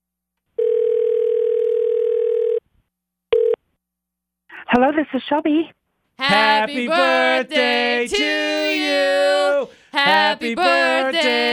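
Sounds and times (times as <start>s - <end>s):
electronic ringback tone of an outgoing phone call: 0.6s - 2.6s, 3.3s - 3.6s
speech: 4.7s - 11.5s.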